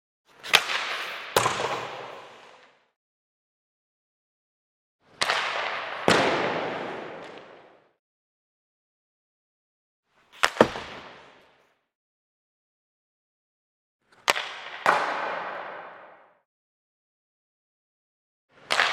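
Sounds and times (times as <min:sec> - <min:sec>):
hockey stick slap shot hitting puck: 0:00.3 - 0:02.8, 0:05.1 - 0:07.8, 0:10.4 - 0:11.6, 0:14.1 - 0:16.3, 0:18.6 - 0:18.9.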